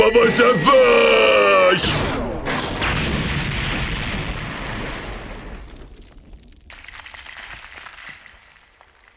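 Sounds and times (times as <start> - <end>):
speech: 0.1 - 2.2
cannonball fired and exploding: 1.8 - 6.2.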